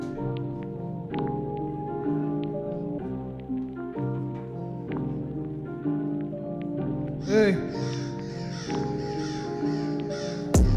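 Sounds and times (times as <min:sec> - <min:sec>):
steady tonal backdrop: 0:00.0 - 0:10.7
crow cawing: 0:07.2 - 0:10.6
speech: 0:07.3 - 0:08.0.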